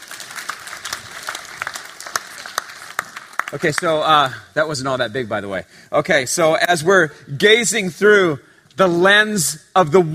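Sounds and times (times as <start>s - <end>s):
audience applause: 0.0s - 4.1s
speech: 3.5s - 10.1s.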